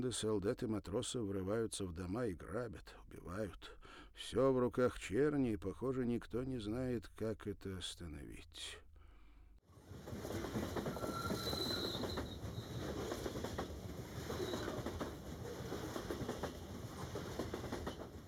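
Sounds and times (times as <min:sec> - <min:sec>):
speech: 0:00.0 - 0:08.8
train wheels clattering over rail joints: 0:09.9 - 0:18.2
faint high squeals: 0:10.8 - 0:13.1, 0:14.2 - 0:14.9.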